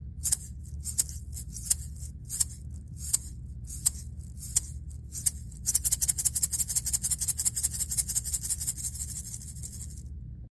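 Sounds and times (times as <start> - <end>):
wooden egg shaker: 0.0 - 10.1.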